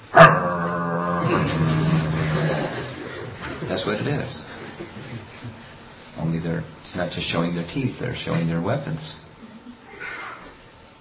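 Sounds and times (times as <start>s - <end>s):
dog growling: 0.0s - 3.1s
laughter: 0.9s - 5.8s
speech: 3.7s - 5.6s, 6.2s - 9.3s.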